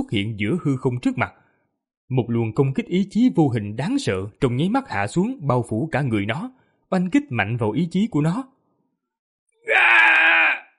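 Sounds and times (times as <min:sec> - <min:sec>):
speech: 0:00.1 - 0:01.4, 0:02.1 - 0:08.6
creature howling in pain: 0:09.6 - 0:10.7.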